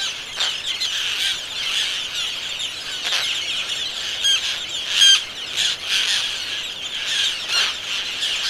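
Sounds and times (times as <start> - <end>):
roseate tern chorus of rasping overlapping calls: 0.0 - 8.4.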